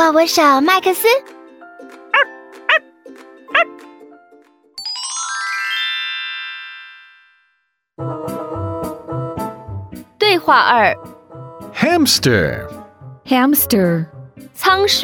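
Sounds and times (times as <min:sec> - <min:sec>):
soft music: 0:00.0 - 0:03.0, 0:08.0 - 0:15.0
speech: 0:00.1 - 0:01.4, 0:10.4 - 0:11.1, 0:11.8 - 0:15.0
burst of cheerful music: 0:00.7 - 0:06.7, 0:08.0 - 0:15.0
puppy giving high-pitched yips: 0:02.2 - 0:02.8, 0:03.5 - 0:03.7
rising shimmering chime: 0:04.8 - 0:07.5.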